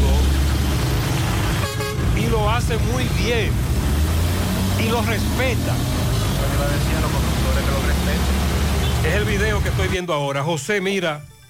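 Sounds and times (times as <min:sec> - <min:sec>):
low steady rumble of idling traffic in a traffic jam: 0:00.0 - 0:10.0
car horn honking in a traffic jam at a dead traffic light: 0:01.4 - 0:02.3
speech: 0:02.6 - 0:03.6, 0:04.8 - 0:06.0, 0:06.6 - 0:11.3.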